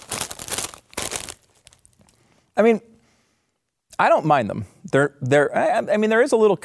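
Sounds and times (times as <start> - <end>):
spicy ranch-flavoured chips crunching: 0.0 - 2.2
speech: 2.6 - 2.9, 4.0 - 6.6.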